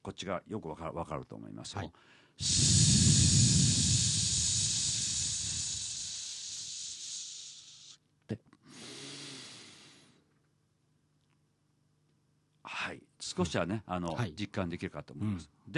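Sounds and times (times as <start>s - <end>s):
speech: 0.0s - 3.6s, 13.4s - 15.7s
long hissing exhalation in an abdominal breathing exercise: 2.4s - 8.0s, 8.6s - 10.2s
short breath puff: 2.4s - 8.0s, 8.6s - 10.2s.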